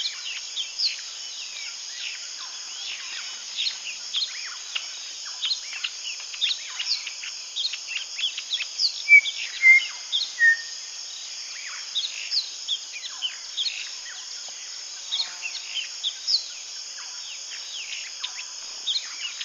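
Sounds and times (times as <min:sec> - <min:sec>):
steady high insect drone: 0:00.0 - 0:19.4
White-flanked batis giving clear level whistled notes: 0:09.1 - 0:10.7.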